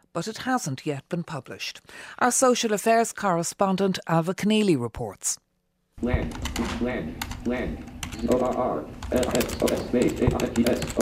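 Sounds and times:
speech: 0.2s - 5.4s, 6.0s - 11.0s
fast synthetic screen-reader voice: 6.0s - 11.0s
woman typing on a computer keyboard: 6.3s - 11.0s.

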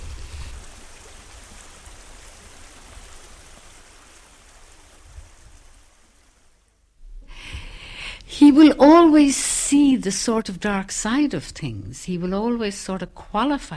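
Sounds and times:
river water rushing: 0.0s - 6.8s
speech: 8.4s - 13.7s.

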